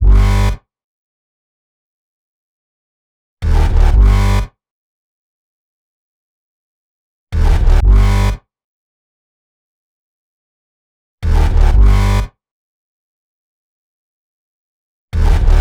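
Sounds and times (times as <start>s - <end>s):
complex electro synth bass: 0.0s - 0.5s, 3.4s - 4.4s, 7.4s - 8.3s, 11.2s - 12.2s, 15.2s - 15.5s.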